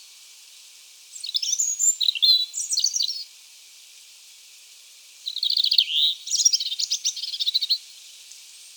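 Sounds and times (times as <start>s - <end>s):
European robin singing: 1.1s - 3.3s, 5.2s - 7.8s.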